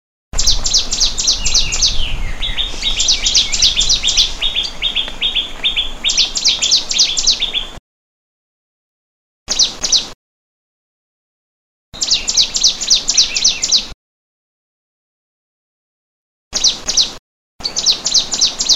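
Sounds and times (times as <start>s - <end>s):
prenjak lumut bird calling: 0.4s - 7.8s, 9.5s - 10.1s, 12.0s - 13.9s, 16.6s - 18.7s.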